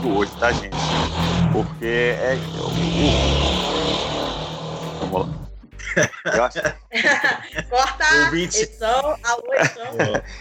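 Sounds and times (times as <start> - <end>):
speech: 0.0 - 4.2, 5.0 - 10.3
motorcycle engine droning past outside: 0.0 - 5.5
laughter: 5.8 - 7.9, 9.4 - 10.3.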